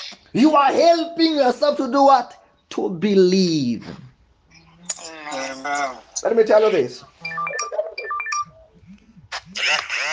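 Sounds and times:
speech: 0:00.3 - 0:04.0, 0:05.0 - 0:07.1
mobile phone electronic melodic tones: 0:07.2 - 0:08.8.

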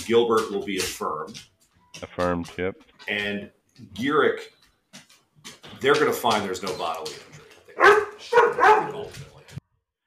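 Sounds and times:
speech: 0:00.0 - 0:04.6, 0:05.8 - 0:09.3
dog barking at home greeting someone: 0:07.8 - 0:09.1.

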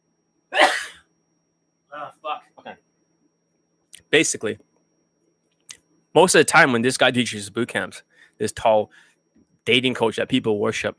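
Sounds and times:
person sneezing: 0:00.6 - 0:01.0
speech: 0:01.9 - 0:02.8, 0:04.1 - 0:04.7, 0:06.2 - 0:10.9.

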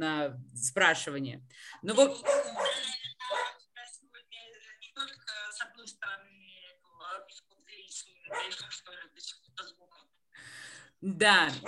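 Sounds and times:
speech: 0:00.0 - 0:02.9, 0:11.0 - 0:11.6
dog barking sharply: 0:02.2 - 0:03.6, 0:08.3 - 0:08.6.

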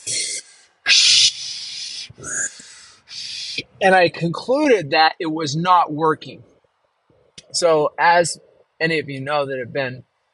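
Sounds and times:
quick tense breaths of an anxious person doing a breathing exercise: 0:01.2 - 0:03.6
speech: 0:03.8 - 0:06.5, 0:07.5 - 0:10.1.

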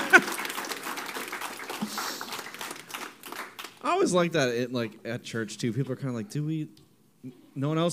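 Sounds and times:
sharp clap: 0:00.0 - 0:03.8
speech: 0:03.9 - 0:07.9.

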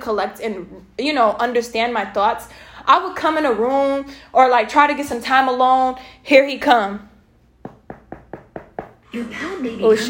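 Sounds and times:
speech: 0:00.0 - 0:07.1, 0:09.2 - 0:10.0
knocking on a door: 0:07.6 - 0:09.0.

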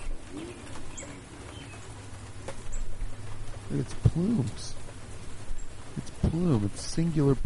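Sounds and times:
bird cooing outdoors: 0:00.0 - 0:02.0
steady hum: 0:00.0 - 0:07.4
speech: 0:03.7 - 0:04.8, 0:06.3 - 0:07.4.

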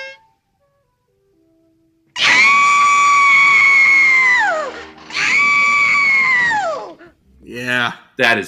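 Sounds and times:
old lady's shrill sustained scream in a cartoon: 0:02.2 - 0:07.0
faint brief kazoo-like tuning note in a cartoon: 0:02.2 - 0:07.5
speech: 0:07.9 - 0:08.4.

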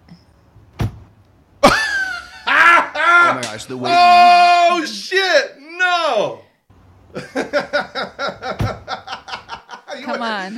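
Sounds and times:
laughter: 0:01.6 - 0:04.1, 0:07.2 - 0:10.5
speech: 0:03.4 - 0:06.4, 0:10.2 - 0:10.5
car door thunk: 0:08.5 - 0:08.9.

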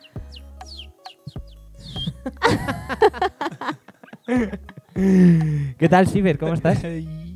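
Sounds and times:
person imitating a canary's song: 0:00.0 - 0:05.7
laughter: 0:02.1 - 0:05.8
speech: 0:04.3 - 0:07.2.

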